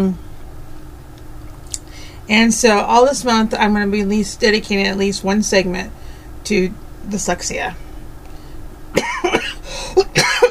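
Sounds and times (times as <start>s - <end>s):
speech: 0.0s - 0.2s, 2.3s - 7.8s
person coughing harshly from a lingering cough: 8.9s - 10.4s.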